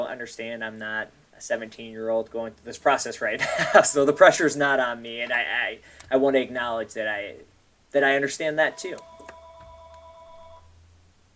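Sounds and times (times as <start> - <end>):
speech: 0.1 - 9.1
telephone ringing with an electronic tone: 3.3 - 4.8, 8.6 - 10.7.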